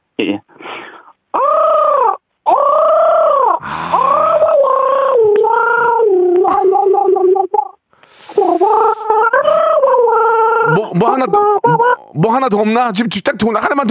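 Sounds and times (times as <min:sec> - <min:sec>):
person imitating a crow cawing: 0:01.3 - 0:12.3
speech: 0:12.1 - 0:13.8.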